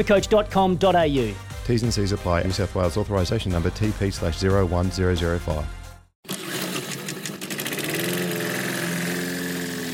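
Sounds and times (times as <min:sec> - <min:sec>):
speech: 0:00.0 - 0:05.8
small engine running: 0:06.2 - 0:09.9.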